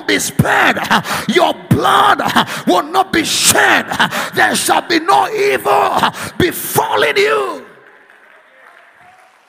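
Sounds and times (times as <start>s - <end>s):
speech: 0.1s - 7.6s
audience clapping: 7.4s - 9.4s.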